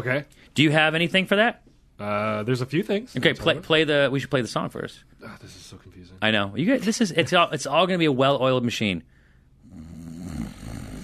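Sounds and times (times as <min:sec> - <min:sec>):
speech: 0:00.0 - 0:09.1
person snoring: 0:09.6 - 0:11.0.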